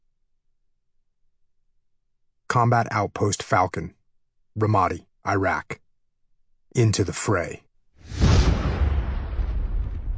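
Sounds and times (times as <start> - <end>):
speech: 2.5 - 4.0, 4.6 - 5.8, 6.7 - 8.2
massive explosion shaking building walls at a combat outpost in Ramadi, Iraq: 8.0 - 10.1.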